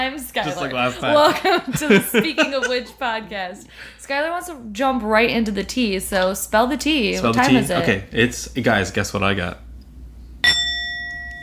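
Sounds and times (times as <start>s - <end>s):
speech: 0.0s - 9.6s
laughter: 0.4s - 3.6s, 7.2s - 8.0s
bell ringing: 10.4s - 11.4s.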